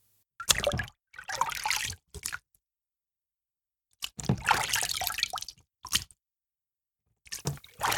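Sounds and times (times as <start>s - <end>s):
water scooped by cupped hands from a bowl into a bucket, imitating rowing: 0.4s - 2.4s, 4.0s - 5.5s, 7.3s - 7.9s.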